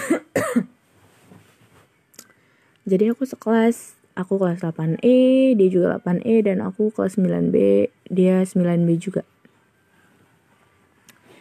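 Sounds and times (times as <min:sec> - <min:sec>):
person coughing: 0:00.0 - 0:00.8
person breathing quietly: 0:02.3 - 0:02.8, 0:11.2 - 0:11.3
speech: 0:02.9 - 0:09.3.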